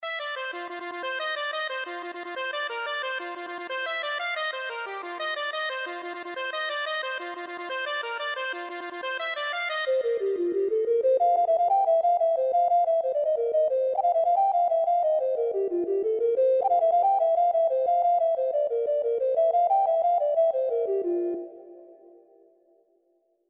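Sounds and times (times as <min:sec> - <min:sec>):
accordion: 0:00.0 - 0:21.7.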